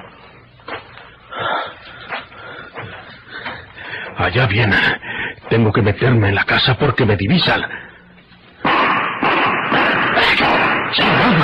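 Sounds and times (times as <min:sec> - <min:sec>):
speech: 0:04.2 - 0:07.8
gunshots as a radio-drama sound effect: 0:08.6 - 0:11.4.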